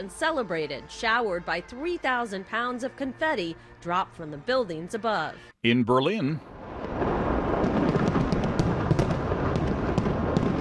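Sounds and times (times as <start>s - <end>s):
speech: 0.0s - 6.5s
New Year fireworks exploding over the Brandenburg Gate in Berlin: 6.6s - 10.6s.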